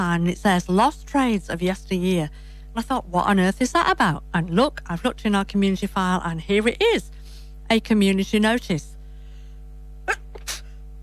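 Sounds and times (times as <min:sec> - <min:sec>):
speech: 0:00.0 - 0:08.9
person sneezing: 0:10.0 - 0:10.8.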